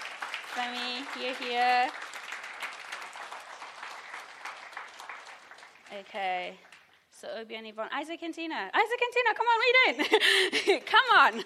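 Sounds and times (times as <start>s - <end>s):
audience clapping to encourage a group of people: 0.0s - 7.1s
speech: 0.6s - 2.1s, 5.9s - 11.4s.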